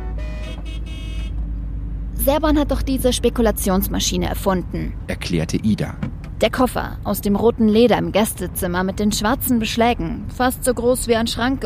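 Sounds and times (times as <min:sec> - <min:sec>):
angry car horns honking: 0:00.0 - 0:01.6
low traffic rumble: 0:00.0 - 0:11.6
speech: 0:02.2 - 0:11.6.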